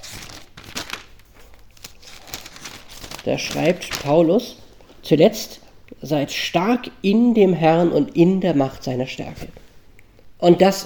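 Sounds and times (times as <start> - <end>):
paper pages leafed through by hand: 0.0 - 4.3
speech: 3.2 - 9.6, 10.4 - 10.8.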